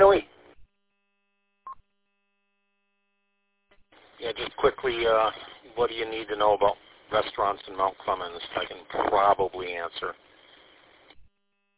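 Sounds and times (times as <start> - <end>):
faint steady electrical hum: 0.0 - 11.7
speech: 4.2 - 10.3.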